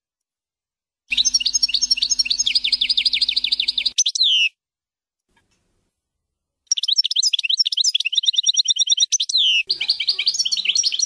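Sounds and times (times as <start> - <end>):
European goldfinch twittering song: 1.1 - 4.5, 6.7 - 11.0.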